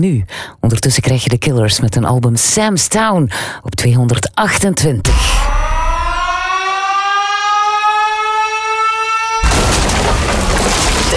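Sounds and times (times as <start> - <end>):
speech: 0.0 - 5.5
loud booming blast: 5.1 - 6.5, 9.4 - 11.1
alarm siren wailing: 5.1 - 10.2.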